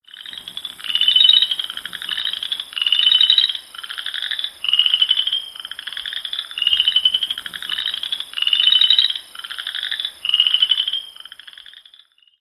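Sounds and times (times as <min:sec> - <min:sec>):
Southern Chorus Frog calling: 0:00.0 - 0:12.4.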